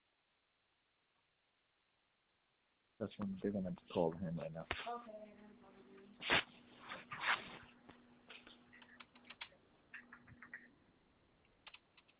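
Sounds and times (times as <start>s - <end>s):
speech: 3.0s - 5.6s
typing on a computer keyboard: 8.8s - 10.7s, 11.6s - 12.1s.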